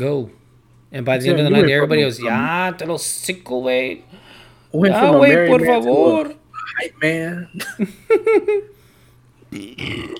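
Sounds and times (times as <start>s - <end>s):
speech: 0.0s - 8.8s, 9.5s - 10.1s
loud drawn-out burp: 9.5s - 10.1s.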